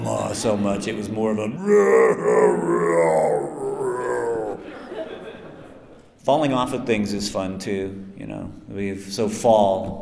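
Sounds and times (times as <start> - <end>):
speech: 0.1 - 3.6, 6.3 - 10.0
voice imitating a long wailing cry: 1.6 - 4.7
laughter: 3.5 - 6.1.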